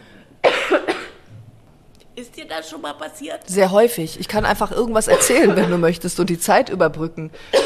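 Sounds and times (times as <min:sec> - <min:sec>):
person coughing after a sip of cola: 0:00.4 - 0:01.3, 0:05.1 - 0:05.8, 0:07.5 - 0:07.6
speech: 0:02.2 - 0:07.6.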